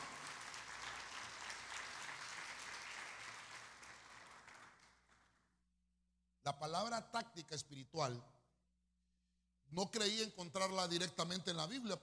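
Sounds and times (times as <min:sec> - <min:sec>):
audience at a Spanish-language church service clapping: 0:00.0 - 0:05.5
speech: 0:06.5 - 0:08.3, 0:09.7 - 0:12.0.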